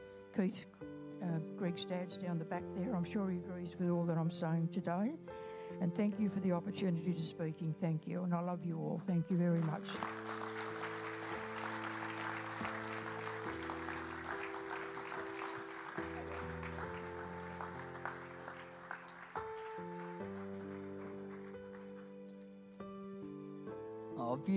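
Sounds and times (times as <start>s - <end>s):
sustained music: 0.0s - 24.5s
speech: 0.4s - 10.2s
audience clapping after a speech: 9.4s - 22.5s.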